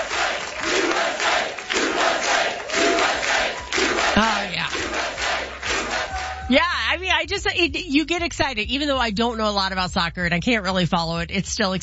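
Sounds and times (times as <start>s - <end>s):
soccer fans chanting in a stadium: 0.0s - 6.4s
speech: 6.5s - 11.8s.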